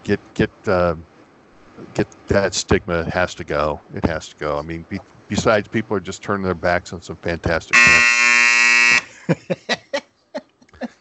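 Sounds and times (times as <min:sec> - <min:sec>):
speech: 0:00.1 - 0:01.1, 0:01.8 - 0:08.0, 0:09.3 - 0:09.8
laughter: 0:00.6 - 0:01.0, 0:01.8 - 0:08.0, 0:09.0 - 0:10.0
loud harsh electronic buzzer: 0:07.7 - 0:09.2.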